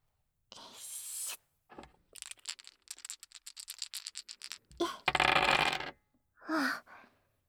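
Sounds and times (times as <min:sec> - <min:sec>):
dice rattling and tumbling: 0:01.8 - 0:05.9.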